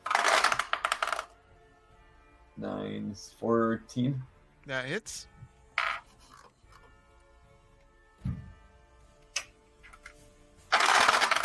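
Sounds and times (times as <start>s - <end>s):
dice clattering across a table during a tabletop game: 0.0s - 1.3s, 5.8s - 6.5s, 10.7s - 11.4s
speech: 2.6s - 5.3s.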